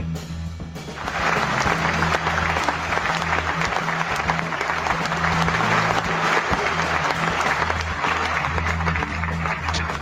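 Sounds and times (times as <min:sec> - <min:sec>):
crowd applauding: 0:00.9 - 0:09.9.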